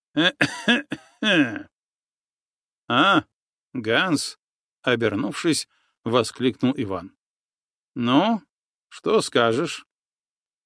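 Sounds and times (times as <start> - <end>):
person clearing throat: 0.2 - 1.7
person coughing: 0.2 - 1.7
speech: 0.2 - 1.7, 2.9 - 7.2, 8.0 - 9.9.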